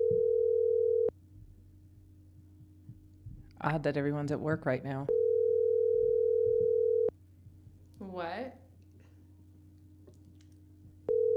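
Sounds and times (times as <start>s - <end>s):
ringback tone of an unanswered telephone call: 0.0s - 1.1s, 5.1s - 7.1s, 11.1s - 11.3s
speech: 3.6s - 5.2s, 8.2s - 8.6s.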